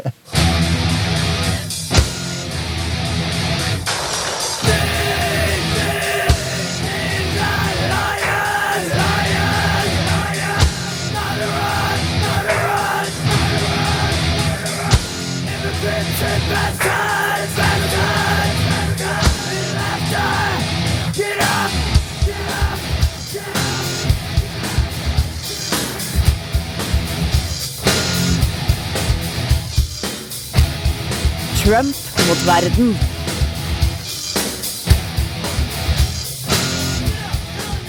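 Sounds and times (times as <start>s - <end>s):
distorted guitars: 0.0s - 37.8s
harsh shouted vocals: 4.6s - 24.2s, 31.5s - 33.0s, 37.0s - 37.8s
speech: 31.7s - 33.1s.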